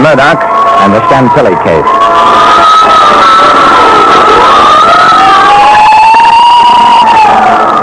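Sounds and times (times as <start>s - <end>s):
speech: 0.1s - 4.5s
fire engine sirens wailing: 1.8s - 7.8s.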